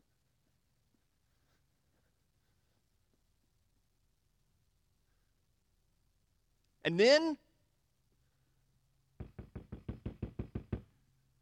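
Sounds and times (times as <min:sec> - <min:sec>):
speech: 0:06.8 - 0:07.4
firm knocks on a door: 0:09.2 - 0:10.9.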